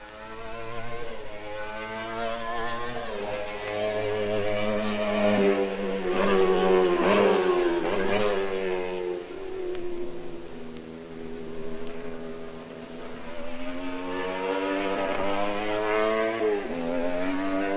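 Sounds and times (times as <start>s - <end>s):
race car exhaust roaring through a hairpin curve on a racing circuit: 0.0s - 17.7s.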